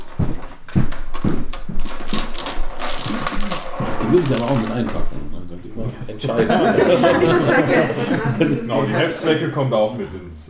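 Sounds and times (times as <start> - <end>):
playing cards being shuffled: 0.0 - 5.2
dice rattling and tumbling onto a table: 1.8 - 5.1
speech: 4.1 - 5.2, 5.8 - 10.4
laughter: 5.8 - 9.5.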